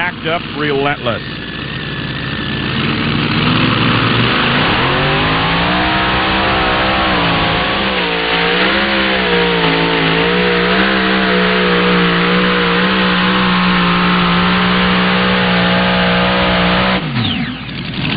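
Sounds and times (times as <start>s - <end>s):
twin Hemi engines of a pulling tractor roaring during a tractor pull: 0.0s - 18.1s
speech: 0.2s - 1.4s.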